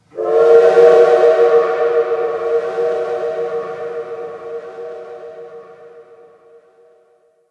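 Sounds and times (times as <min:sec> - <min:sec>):
distant train horn at shipyards: 0:00.0 - 0:07.4.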